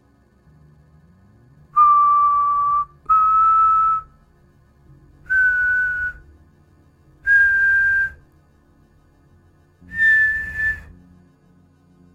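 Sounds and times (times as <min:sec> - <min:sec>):
distant mournful whistling of long steady notes: 0:01.8 - 0:04.1, 0:05.3 - 0:06.2, 0:07.3 - 0:08.2, 0:09.9 - 0:10.9.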